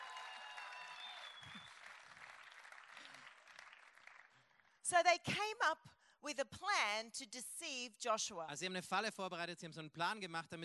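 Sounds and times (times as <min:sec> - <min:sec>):
high whoops and cheers: 0:00.0 - 0:01.8
crowd clapping in continuous applause: 0:00.0 - 0:04.8
speech: 0:04.9 - 0:10.6.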